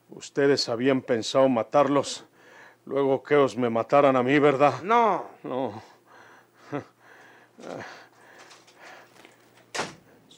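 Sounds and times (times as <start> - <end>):
speech: 0.2 - 5.9, 6.7 - 6.9, 7.6 - 8.0
street door thud: 9.7 - 10.1.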